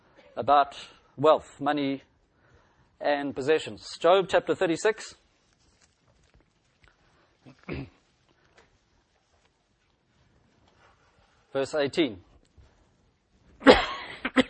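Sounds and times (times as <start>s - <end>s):
speech: 0.4s - 2.1s, 3.0s - 5.2s, 11.6s - 12.3s
person coughing: 7.5s - 8.0s, 13.6s - 14.4s.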